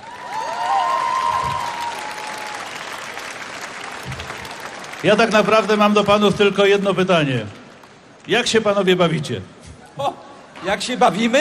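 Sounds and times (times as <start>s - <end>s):
crowd clapping at a public event in Gdynia: 0.0s - 8.7s
speech: 5.0s - 7.6s, 8.2s - 11.3s.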